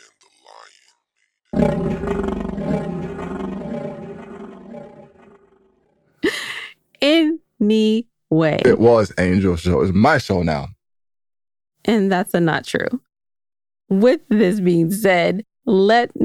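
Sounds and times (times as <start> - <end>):
roar sound effects: 1.6 - 5.8
speech: 7.7 - 10.8, 11.9 - 13.1, 13.9 - 16.2.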